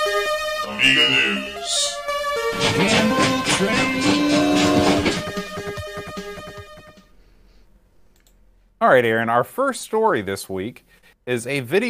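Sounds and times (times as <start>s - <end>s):
chord-like train whistle blaring: 0.6s - 5.4s
train chugging: 0.7s - 7.0s
speech: 0.8s - 1.8s, 2.6s - 4.2s, 8.8s - 11.8s.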